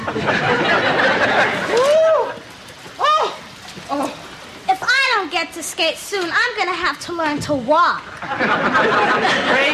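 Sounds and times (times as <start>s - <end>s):
laughter: 0.0s - 2.5s, 8.1s - 9.7s
speech: 0.2s - 1.9s, 5.6s - 9.7s
steady rain hissing: 0.8s - 7.8s.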